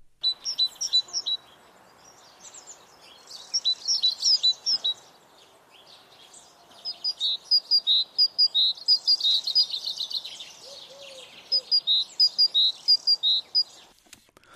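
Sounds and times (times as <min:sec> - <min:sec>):
great tit singing bright high two-note phrases: 0:00.2 - 0:13.9.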